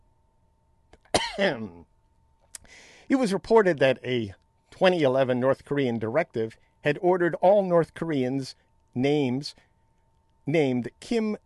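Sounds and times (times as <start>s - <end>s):
sharp raspy cough: 1.1s - 1.7s
speech: 1.4s - 1.9s, 2.7s - 9.7s, 10.4s - 11.4s.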